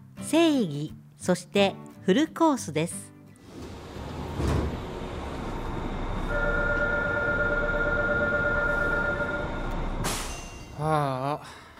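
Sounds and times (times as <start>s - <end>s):
speech: 0.3s - 3.1s
train rumbling past a station platform: 3.5s - 10.5s.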